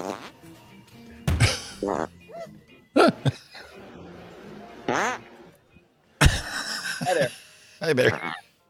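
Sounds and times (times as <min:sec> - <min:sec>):
fart sounds in a prank recording: 0:00.0 - 0:00.4, 0:01.7 - 0:02.2, 0:04.8 - 0:05.5
speech: 0:01.8 - 0:03.5, 0:04.9 - 0:05.2, 0:07.1 - 0:08.4.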